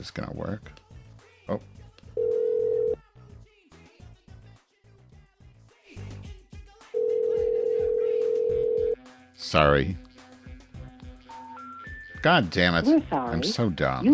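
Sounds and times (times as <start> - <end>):
speech: 0.0 - 0.8, 1.5 - 1.8, 9.5 - 10.1, 12.2 - 14.1
Skype call dialing tone: 2.2 - 3.0, 7.0 - 9.0.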